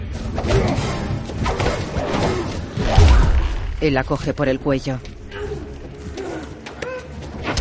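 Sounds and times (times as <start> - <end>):
heavy punches and thuds in a hand-to-hand fight between a man and a woman: 0.3 - 3.8
speech: 3.8 - 5.1.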